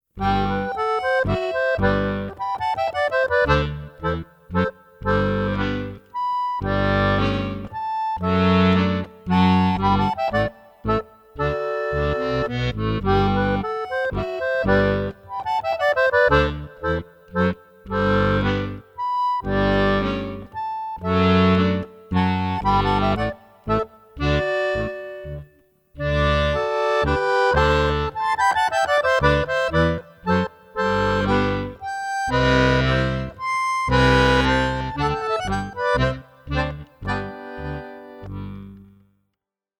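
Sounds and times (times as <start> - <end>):
classical music: 0.2 - 39.1.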